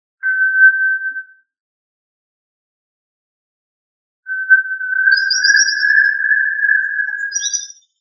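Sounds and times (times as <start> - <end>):
faint high chirps: 4.3 - 8.0
tinamou call with short steady whistle and long level whistled note: 4.8 - 7.8.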